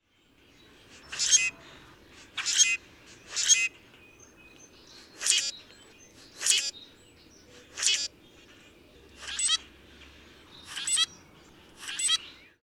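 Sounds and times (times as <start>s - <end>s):
common grackle calling: 0.7s - 9.8s, 10.5s - 12.4s.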